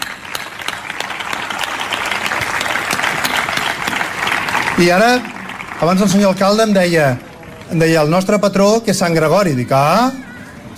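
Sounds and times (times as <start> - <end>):
audience applause at a town gathering in Roquetes: 0.0 - 8.5
speech: 4.8 - 10.2.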